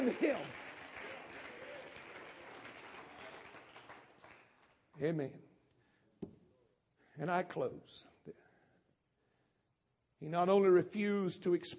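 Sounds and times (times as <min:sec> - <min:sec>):
large group clapping hands to the Lord: 0:00.0 - 0:05.0
speech: 0:00.1 - 0:00.6, 0:05.0 - 0:05.5, 0:07.2 - 0:08.4, 0:10.2 - 0:11.7.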